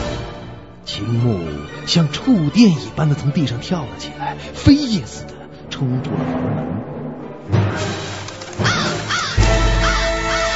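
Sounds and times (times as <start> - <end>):
speech: 1.0 - 6.9
low rumbling background: 3.0 - 8.3
startled crows cawing at night: 8.5 - 10.5.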